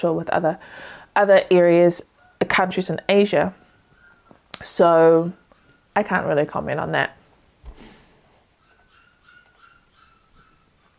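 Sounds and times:
speech: 0.0 - 3.6, 4.6 - 5.4, 6.0 - 7.2
puppies whimpering and crying: 8.6 - 10.9.

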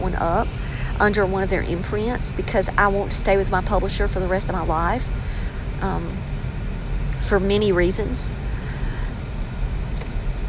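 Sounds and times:
road traffic passing with engine drone and tire noise: 0.0 - 10.4
speech: 0.1 - 6.3, 7.2 - 8.4.

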